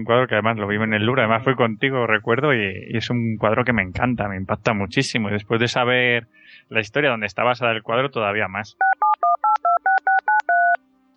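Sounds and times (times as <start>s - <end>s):
speech: 0.0s - 9.1s
telephone keypad dual-tone beeps while placing a call: 8.8s - 10.8s.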